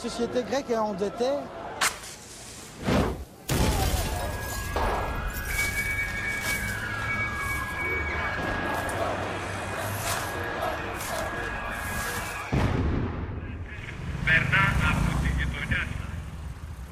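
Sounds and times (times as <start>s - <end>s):
speech: 0.0s - 1.6s
noisy street ambience: 0.0s - 16.9s
continuous high-pitched bank alarm siren: 4.1s - 12.6s.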